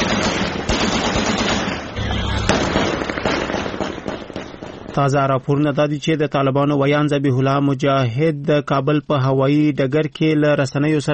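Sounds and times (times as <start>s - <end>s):
celebratory gunfire at night: 0.0s - 5.2s
fireworks over a city at night: 2.5s - 5.1s
speech: 5.0s - 11.1s.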